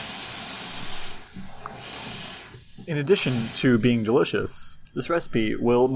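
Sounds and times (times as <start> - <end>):
steam hissing from a pot of boiling water: 0.0 - 4.6
speech: 2.9 - 5.9.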